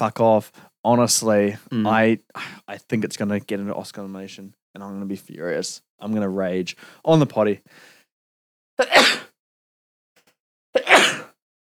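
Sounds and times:
speech: 0:00.0 - 0:07.9, 0:08.8 - 0:09.2
sharp forceful sneezes: 0:08.8 - 0:09.4, 0:10.8 - 0:11.4.

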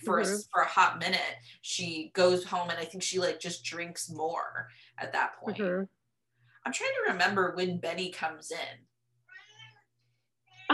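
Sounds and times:
speech: 0:00.0 - 0:06.0, 0:06.6 - 0:08.9
cat meowing: 0:09.3 - 0:09.8.

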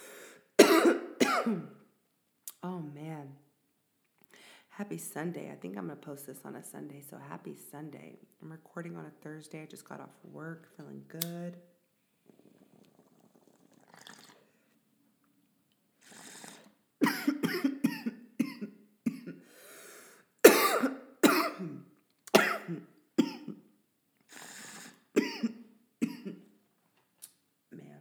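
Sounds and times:
person who has smoked since 2010 coughing: 0:00.6 - 0:01.8, 0:17.0 - 0:19.4, 0:20.5 - 0:21.8, 0:22.4 - 0:23.6, 0:25.2 - 0:26.4
speech: 0:01.4 - 0:01.8, 0:02.6 - 0:03.4, 0:04.8 - 0:11.7.

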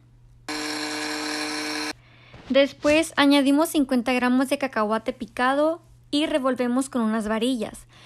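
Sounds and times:
faint hum: 0:00.0 - 0:00.5, 0:01.9 - 0:08.0
mixer whirring blending coconut milk, soy milk, peanut butter and agave syrup: 0:00.5 - 0:02.0
speech: 0:02.5 - 0:08.0.

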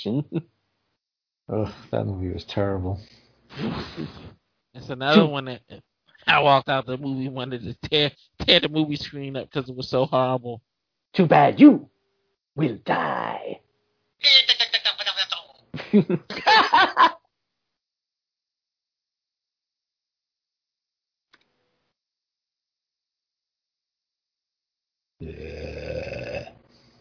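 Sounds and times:
speech: 0:00.0 - 0:00.6, 0:01.5 - 0:11.9, 0:12.6 - 0:13.6, 0:14.2 - 0:14.5, 0:15.9 - 0:17.2
raspy fart noises: 0:03.5 - 0:04.4
laughter: 0:15.8 - 0:17.2.

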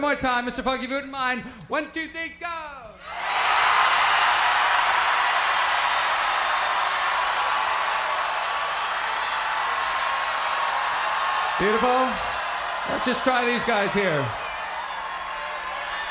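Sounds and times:
speech: 0:00.0 - 0:03.5, 0:11.6 - 0:14.4
audience screaming, moaning and groaning: 0:03.0 - 0:16.0.

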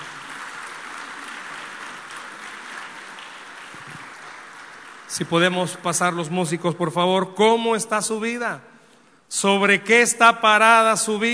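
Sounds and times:
audience applauding: 0:00.0 - 0:06.2
speech: 0:05.1 - 0:08.7, 0:09.3 - 0:11.3.

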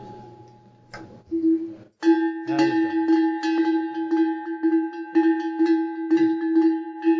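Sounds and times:
small metal picote livestock bell ringing: 0:02.0 - 0:07.1.

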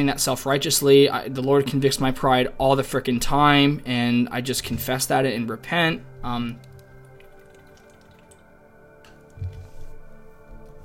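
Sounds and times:
speech: 0:00.0 - 0:06.7
person drinking water after working out: 0:06.6 - 0:08.4.

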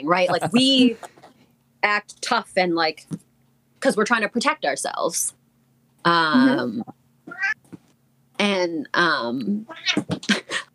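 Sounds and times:
speech: 0:00.0 - 0:01.1, 0:01.8 - 0:03.2, 0:03.8 - 0:05.4, 0:06.0 - 0:07.0, 0:08.4 - 0:10.3
cat meowing with long drawn-out meows: 0:07.3 - 0:07.6, 0:09.7 - 0:10.0.

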